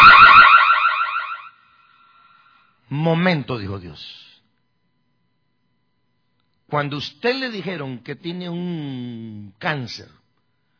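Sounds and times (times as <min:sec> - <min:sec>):
loud warbling electronic alarm ringing: 0:00.0 - 0:02.6
speech: 0:02.9 - 0:04.3, 0:06.7 - 0:10.2.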